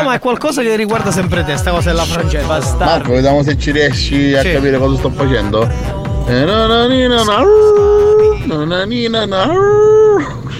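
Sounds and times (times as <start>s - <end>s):
speech: 0.0s - 10.4s
person imitating a wolf howl: 7.2s - 8.5s, 9.4s - 10.4s.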